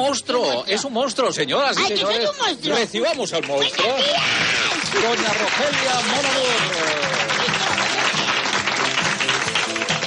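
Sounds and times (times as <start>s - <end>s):
speech: 0.0s - 7.0s
crowd noise: 1.7s - 10.0s
studio audience applause: 3.0s - 10.0s.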